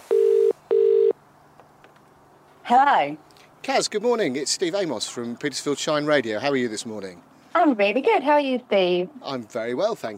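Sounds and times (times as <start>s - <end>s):
telephone ringing tone: 0.1s - 1.2s
speech: 2.7s - 10.1s.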